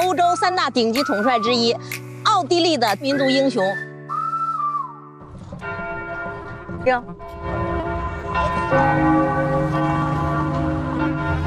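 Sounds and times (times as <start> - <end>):
speech: 0.1 - 3.9, 6.8 - 7.6, 8.4 - 9.3
church bells ringing in the open air of an old city: 5.6 - 11.4.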